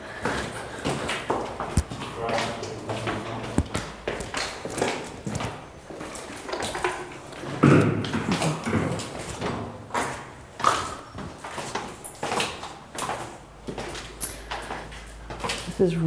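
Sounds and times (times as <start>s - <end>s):
hard footsteps climbing stairs: 0.0s - 16.0s
speech: 15.8s - 16.0s.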